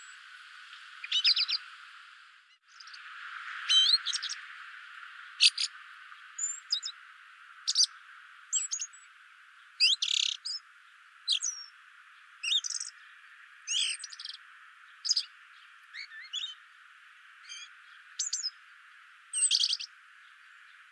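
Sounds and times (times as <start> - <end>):
steady hiss: 0.0 - 20.9
Eurasian blackbird Turdus merula chink calls: 1.0 - 1.6, 3.6 - 4.4, 5.4 - 5.7, 6.3 - 7.0, 7.7 - 9.1, 9.8 - 10.6, 11.3 - 11.7, 12.4 - 16.6, 17.4 - 18.6, 19.3 - 20.9.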